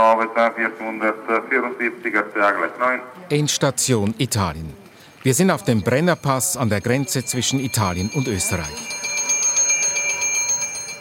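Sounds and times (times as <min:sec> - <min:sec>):
speech: 0:00.0 - 0:09.1
bell ringing at station: 0:05.2 - 0:10.9.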